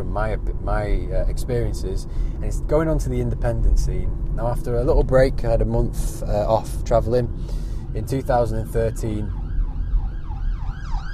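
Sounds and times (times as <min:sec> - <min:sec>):
heavy low rumble of traffic: 0:00.0 - 0:11.1
speech: 0:00.1 - 0:09.4
ambulance siren wailing as it passes by: 0:07.3 - 0:11.1.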